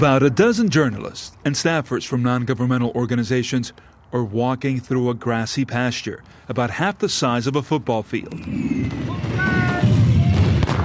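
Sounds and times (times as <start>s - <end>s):
speech: 0.0s - 9.6s
explosions during a combat training exercise in a grassy pasture: 8.2s - 10.8s
one sharp loud blast: 8.3s - 10.8s
gunfire during a combat training exercise in a grassy pasture: 8.6s - 10.8s.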